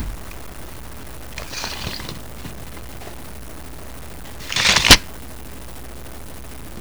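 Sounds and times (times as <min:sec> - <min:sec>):
tape measure: 0:01.4 - 0:02.7, 0:04.4 - 0:05.1.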